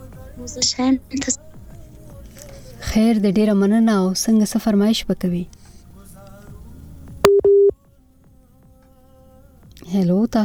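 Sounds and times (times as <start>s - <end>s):
speech: 0.4s - 1.5s, 2.9s - 5.6s, 10.0s - 10.4s
busy tone on a cut-off telephone line: 7.3s - 7.7s.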